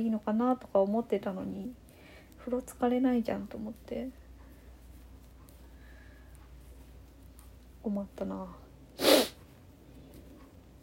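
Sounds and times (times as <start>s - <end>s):
speech: 0.0s - 1.8s, 2.4s - 4.2s, 7.8s - 9.1s
nasal snort from rhinitis: 9.0s - 9.4s.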